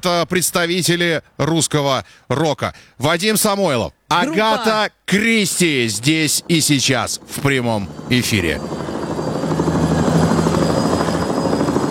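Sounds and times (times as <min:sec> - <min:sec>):
speech: 0:00.0 - 0:09.0
helicopter rotor blades thumping: 0:05.5 - 0:11.9
loud continuous helicopter engine whine: 0:05.5 - 0:11.9.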